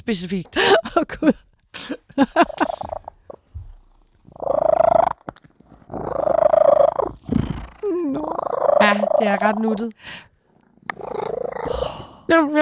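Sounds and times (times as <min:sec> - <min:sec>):
speech: 0:00.1 - 0:01.5, 0:02.2 - 0:02.7, 0:09.3 - 0:10.2, 0:12.3 - 0:12.6
rustling: 0:02.2 - 0:11.8
cat purring: 0:02.2 - 0:12.6.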